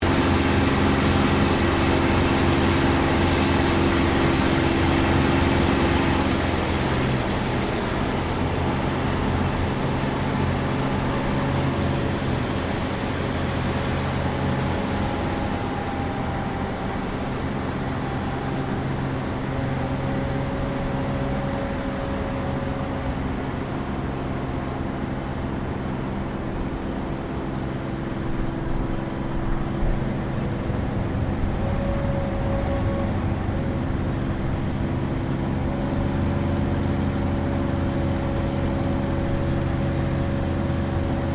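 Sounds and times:
CAC CA-18 Mustang Mk23 approach and landing heard from interior: 0:00.0 - 0:41.3.

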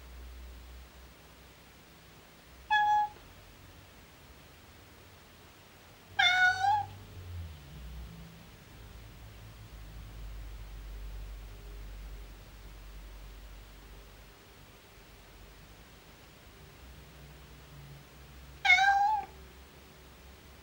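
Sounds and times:
domestic cat miaow: 0:02.6 - 0:03.3, 0:06.2 - 0:07.0, 0:18.6 - 0:19.4.

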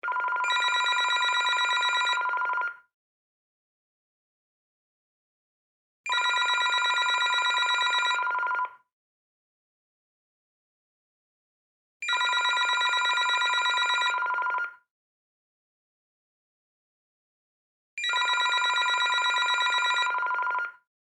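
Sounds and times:
cordless telephone ringing: 0:00.0 - 0:02.6, 0:06.1 - 0:08.6, 0:12.1 - 0:14.6, 0:18.0 - 0:20.6.

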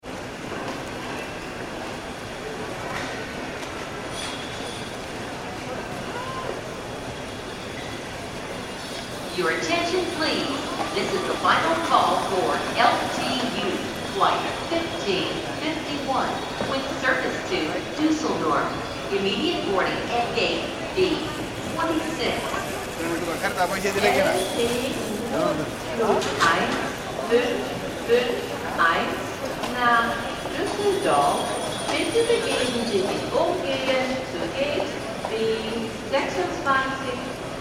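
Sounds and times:
airport check-in hall ambience: 0:00.0 - 0:37.5.

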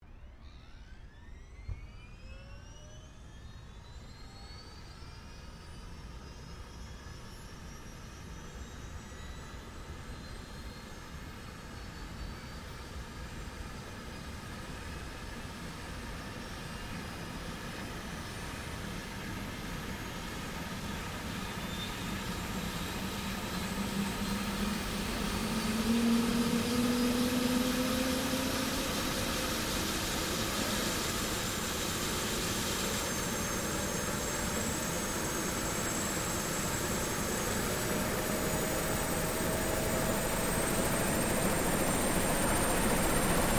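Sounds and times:
2004 Eurocopter EC130 helicopter starting up: 0:13.4 - 0:43.5.

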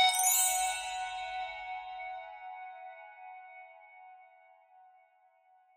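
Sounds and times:
mysterious tribal musical accent: 0:00.1 - 0:02.1.

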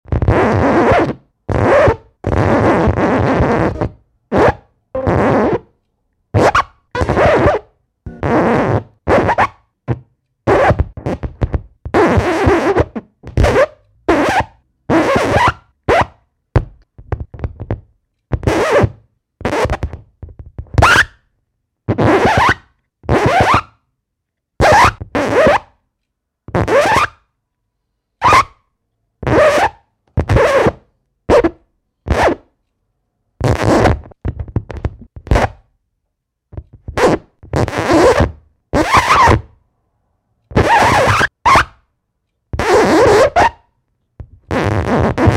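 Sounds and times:
vinyl record needle scratches: 0:00.1 - 0:05.7, 0:06.4 - 0:21.1, 0:21.9 - 0:23.7, 0:24.6 - 0:25.7, 0:26.5 - 0:27.2, 0:29.2 - 0:32.5, 0:33.4 - 0:35.6, 0:36.9 - 0:39.5, 0:40.5 - 0:41.7, 0:42.6 - 0:43.6, 0:44.5 - 0:45.3.

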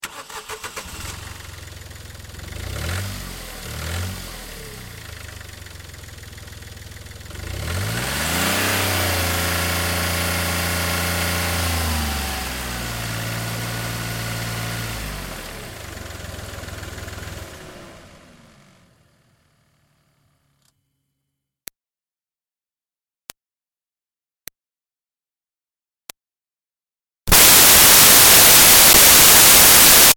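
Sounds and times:
2005 Smart Fortwo car engine revving heard onboard: 0:00.1 - 0:18.4, 0:27.3 - 0:30.1.

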